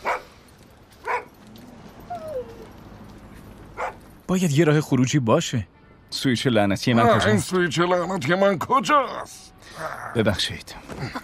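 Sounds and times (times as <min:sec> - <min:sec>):
dog barking: 0:00.0 - 0:00.3, 0:01.0 - 0:01.4, 0:03.8 - 0:04.0
speech: 0:04.3 - 0:11.2.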